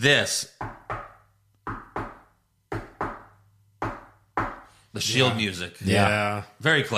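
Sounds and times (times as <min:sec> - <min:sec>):
speech: 0:00.0 - 0:00.6, 0:05.0 - 0:06.9
sharp knocks on a door: 0:00.6 - 0:04.7.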